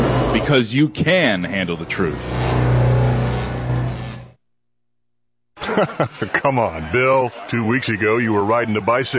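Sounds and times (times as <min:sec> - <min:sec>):
speech: 0:00.4 - 0:02.7, 0:05.8 - 0:09.1
new car engine revving as it arrives: 0:01.4 - 0:04.4
laughter: 0:05.6 - 0:09.1.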